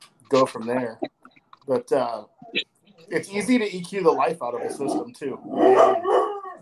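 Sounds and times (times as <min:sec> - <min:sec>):
speech: 0:00.3 - 0:06.3
four-pound chihuahua barking and howling: 0:04.8 - 0:06.6.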